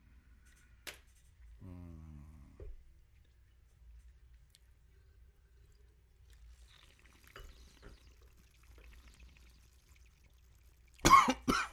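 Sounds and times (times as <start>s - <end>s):
faint sipping of wine: 3.3s - 11.7s
person coughing after sipping wine: 11.0s - 11.7s.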